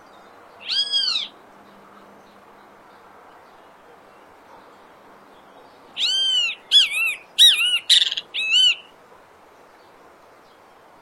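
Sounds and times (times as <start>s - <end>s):
wild great kiskadee singing in nature in Brazil: 0.6s - 1.4s, 6.0s - 9.0s.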